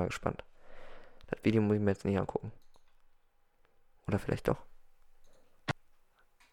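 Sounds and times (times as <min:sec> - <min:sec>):
speech: 0:00.0 - 0:00.5, 0:01.3 - 0:02.6, 0:04.1 - 0:04.7
computer mouse click: 0:02.6 - 0:03.1.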